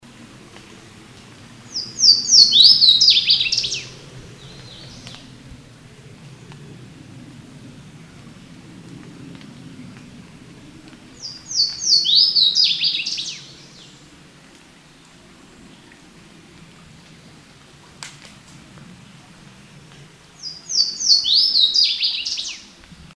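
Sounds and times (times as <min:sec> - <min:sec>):
Louisiana waterthrush Parkesia motacilla: 0:01.7 - 0:05.3, 0:11.2 - 0:14.0, 0:20.4 - 0:22.7.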